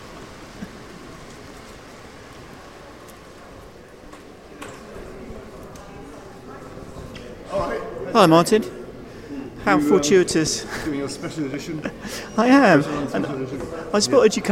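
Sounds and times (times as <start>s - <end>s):
steady rain falling outdoors: 0.0s - 14.5s
voices murmuring: 0.3s - 14.5s
speech: 8.2s - 8.8s, 9.6s - 14.5s
laughter: 9.4s - 13.9s.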